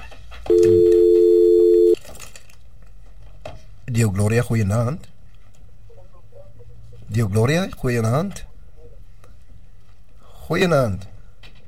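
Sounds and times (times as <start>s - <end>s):
faint low noise: 0.0s - 11.6s
telephone busy tone after dropped call-in line: 0.5s - 2.0s
speech: 4.0s - 5.1s, 7.1s - 8.5s, 10.5s - 11.1s.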